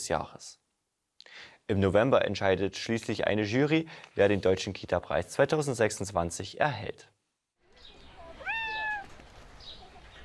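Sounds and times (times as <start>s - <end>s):
speech: 0.0s - 0.6s, 1.7s - 7.2s
faint hiss: 0.0s - 8.2s
cat meowing: 8.2s - 9.2s.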